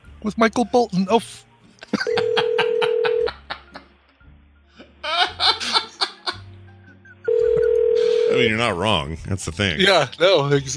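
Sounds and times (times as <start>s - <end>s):
speech: 0.2s - 2.2s, 8.4s - 10.7s
laughter: 1.8s - 4.0s, 4.8s - 6.5s
low repeating telephone ringing tones: 2.2s - 3.3s, 7.3s - 8.4s
steady dial tone: 7.3s - 8.4s.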